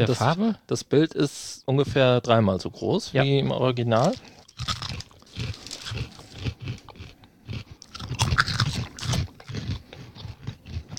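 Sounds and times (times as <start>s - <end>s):
speech: 0.0s - 6.1s
person chewing surimi: 4.0s - 10.9s.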